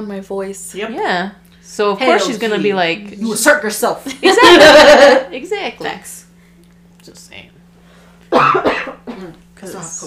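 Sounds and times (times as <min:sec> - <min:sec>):
speech: 0:00.0 - 0:06.3, 0:07.1 - 0:07.6, 0:08.3 - 0:10.0
laughter: 0:04.1 - 0:05.3
person coughing: 0:08.3 - 0:09.4.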